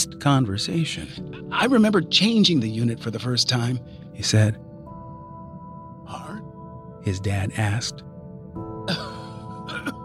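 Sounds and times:
speech: 0:00.1 - 0:04.7, 0:07.0 - 0:08.1
man coughing in a harsh throaty coughing fit: 0:08.9 - 0:10.0.

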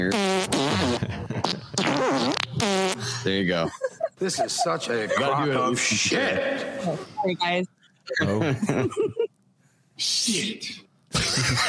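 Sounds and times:
speech: 0:00.0 - 0:00.6, 0:03.2 - 0:09.2, 0:10.0 - 0:11.6
fart sound effect: 0:00.0 - 0:03.0
laughter: 0:03.3 - 0:07.2, 0:08.1 - 0:09.3.

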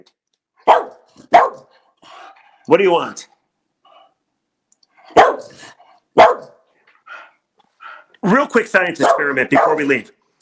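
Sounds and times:
speech: 0:00.0 - 0:01.7, 0:02.7 - 0:03.3, 0:08.2 - 0:10.2
dog barking: 0:00.6 - 0:01.7, 0:05.1 - 0:05.6, 0:06.2 - 0:06.7, 0:09.0 - 0:09.9.

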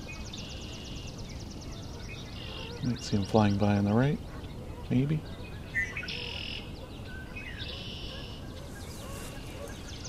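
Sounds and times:
red-winged blackbird calling: 0:00.0 - 0:10.0
speech: 0:02.8 - 0:04.3, 0:04.9 - 0:05.4.

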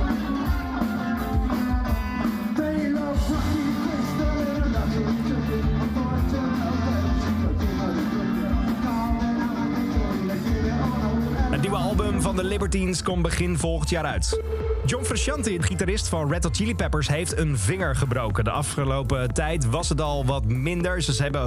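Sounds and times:
driving drums of live rock band: 0:00.0 - 0:21.4
thick distorted guitars: 0:00.0 - 0:21.4
speech: 0:12.4 - 0:21.4.

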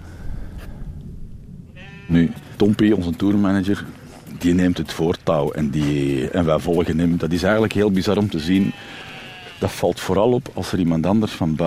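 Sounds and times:
large flock of sheep bleating: 0:01.7 - 0:02.8, 0:05.8 - 0:10.2
speech: 0:02.1 - 0:11.6.

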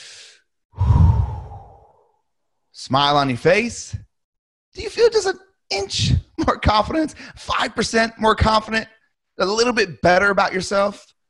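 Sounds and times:
deep breath drawn in during a posture exercise: 0:00.0 - 0:02.1
speech: 0:02.8 - 0:04.1, 0:04.8 - 0:11.1.

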